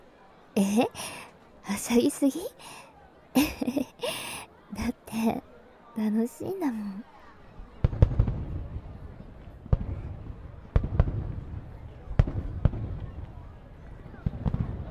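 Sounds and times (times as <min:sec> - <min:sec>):
faint murmuring voices: 0:00.0 - 0:14.8
speech: 0:00.8 - 0:02.8, 0:03.4 - 0:07.1
laughter: 0:03.4 - 0:05.4
fireworks bursting overhead with sharp cracks and booms: 0:07.8 - 0:14.8.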